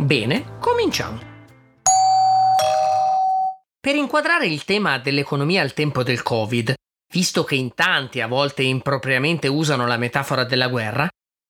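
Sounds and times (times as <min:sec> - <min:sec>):
speech: 0:00.1 - 0:01.3, 0:03.8 - 0:11.2
two-tone doorbell chime: 0:01.9 - 0:03.6.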